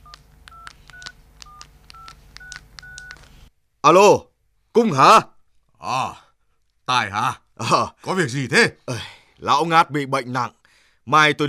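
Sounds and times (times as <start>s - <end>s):
telephone keypad tones as a number is dialed: 0.0s - 3.3s
speech: 3.8s - 6.2s, 6.9s - 11.4s.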